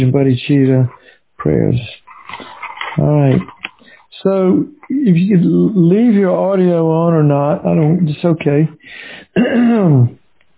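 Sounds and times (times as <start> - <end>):
speech: 0.0 - 2.0, 3.0 - 3.5, 4.2 - 10.2
throat clearing: 9.3 - 10.2.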